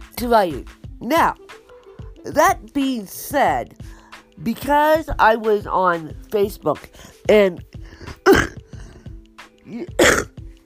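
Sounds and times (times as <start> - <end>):
speech: 0.2 - 1.4, 2.2 - 7.8, 9.7 - 10.2
person coughing in a coughing attack: 7.9 - 9.0, 9.7 - 10.4.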